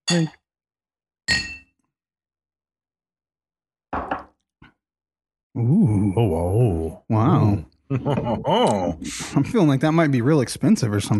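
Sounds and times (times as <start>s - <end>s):
speech: 0.1s - 0.4s, 5.6s - 11.1s
glasses clinking in a toast: 1.3s - 1.7s
laughter: 7.9s - 9.8s.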